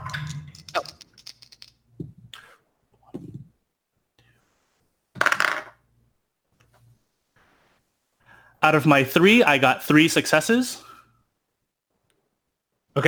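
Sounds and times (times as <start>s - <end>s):
dice rolled by players in a game rattling across a hard surface: 0.6s - 1.8s, 5.2s - 5.8s
speech: 0.8s - 1.0s, 8.6s - 10.9s.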